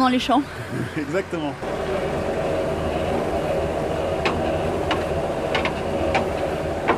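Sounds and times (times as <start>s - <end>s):
speech: 0.0s - 2.3s
tractor-driven agricultural grain mixer churning hemp and lime in the fields: 0.6s - 6.9s
rattles and clanks of the grain mixer: 1.6s - 6.9s.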